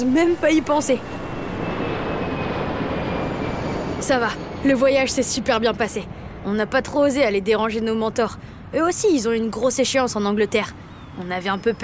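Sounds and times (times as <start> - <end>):
speech: 0.0 - 1.2, 4.1 - 11.8
airplane engine drone in flight: 0.0 - 11.8.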